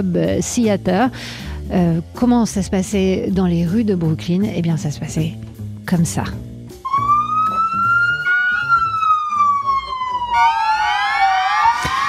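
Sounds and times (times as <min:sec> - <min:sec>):
speech: 0:00.0 - 0:06.5
busy rhythmic musical backing: 0:06.2 - 0:10.9
police-style sirens played live by musicians in a street in Brooklyn: 0:06.8 - 0:12.0.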